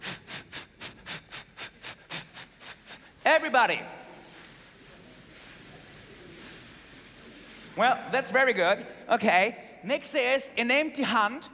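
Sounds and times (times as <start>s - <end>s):
crowd of voices imitating hissing steam: 0.0s - 3.2s
speech: 3.3s - 4.0s, 7.8s - 11.5s.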